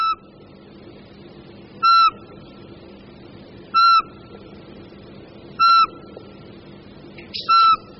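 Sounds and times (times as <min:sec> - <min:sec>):
Eurasian pygmy owl piping whistled notes: 0:00.0 - 0:00.3, 0:01.8 - 0:02.3, 0:03.7 - 0:04.2, 0:05.6 - 0:06.1, 0:07.3 - 0:07.9.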